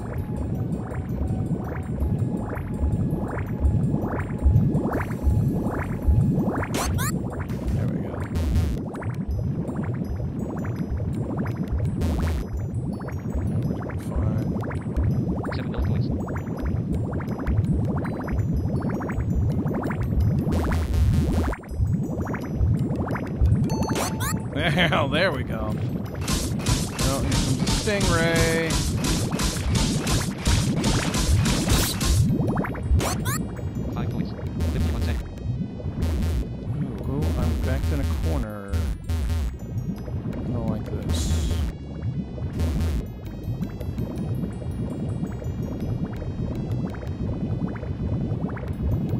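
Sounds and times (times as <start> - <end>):
water bubbling and gurgling: 0.0 - 49.1.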